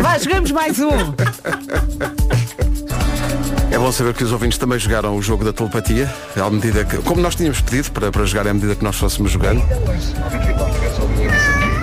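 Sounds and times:
laughter: 0:00.0 - 0:02.9
speech: 0:00.2 - 0:02.6, 0:03.7 - 0:11.4
cat meowing: 0:10.2 - 0:11.8.

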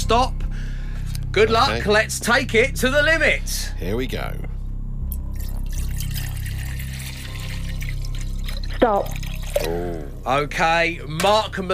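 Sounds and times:
speech: 0:00.1 - 0:00.4, 0:01.3 - 0:04.5, 0:08.8 - 0:11.7
water pouring from a jug into a vessel: 0:05.3 - 0:09.9.

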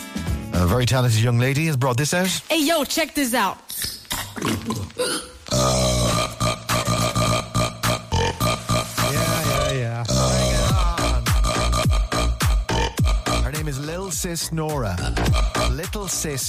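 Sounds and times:
speech: 0:00.6 - 0:05.8, 0:14.2 - 0:16.4
young woman burping in a rhythmic song-like pattern: 0:03.7 - 0:09.0, 0:09.6 - 0:13.5, 0:15.0 - 0:15.8
steady beat: 0:06.2 - 0:16.4.

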